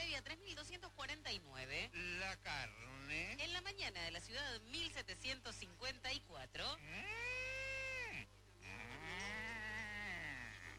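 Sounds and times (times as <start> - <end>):
speech: 0.2 - 7.3
cow mooing: 6.9 - 10.7.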